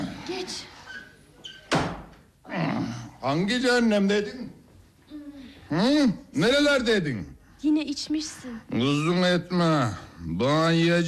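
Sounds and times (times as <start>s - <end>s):
speech: 0.3s - 0.8s, 3.2s - 4.6s, 5.7s - 11.0s
door swinging open: 1.4s - 2.2s
door thud: 1.6s - 2.2s.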